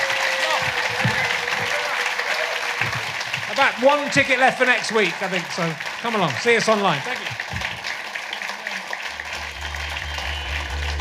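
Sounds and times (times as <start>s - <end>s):
faint murmurs of voices in the crowd: 0.0s - 10.9s
live audience applauding: 0.0s - 10.9s
speech: 3.6s - 7.5s.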